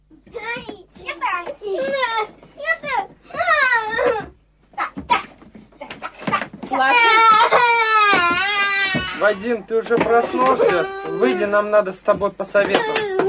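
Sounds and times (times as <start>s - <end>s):
young children bickering: 1.2s - 11.7s
child wailing: 1.6s - 9.4s, 10.2s - 11.6s, 12.7s - 13.2s
speech: 9.3s - 13.1s.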